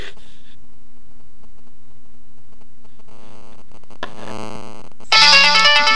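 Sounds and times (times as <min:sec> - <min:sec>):
Nokia flip phone ringtone for an incoming call: 0:05.1 - 0:05.9.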